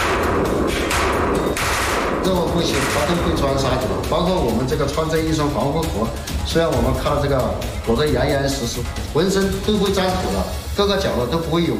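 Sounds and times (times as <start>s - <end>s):
Type 191 rifle gunfire bursts during a test in a harsh sandy environment: 0.0s - 3.5s
speech: 2.3s - 11.7s.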